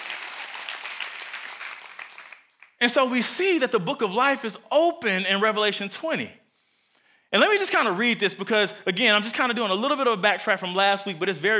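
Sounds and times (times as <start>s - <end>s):
room full of people clapping hands: 0.0s - 2.8s
speech: 2.8s - 6.4s, 7.3s - 11.5s.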